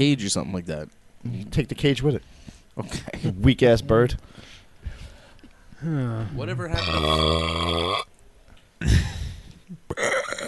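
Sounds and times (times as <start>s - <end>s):
speech: 0.0s - 4.6s, 5.8s - 8.1s, 8.8s - 10.1s
person burping: 6.8s - 8.1s, 9.8s - 10.4s.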